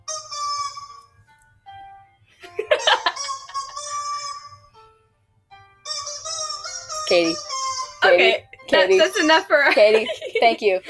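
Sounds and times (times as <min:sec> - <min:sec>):
rubber chicken toy squeaking: 0:00.0 - 0:01.1, 0:02.8 - 0:04.8, 0:05.8 - 0:08.4
speech: 0:07.1 - 0:10.8.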